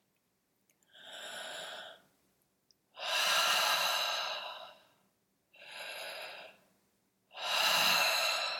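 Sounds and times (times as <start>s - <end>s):
slow deep breathing: 0.9s - 2.1s, 3.0s - 6.7s, 7.3s - 8.5s.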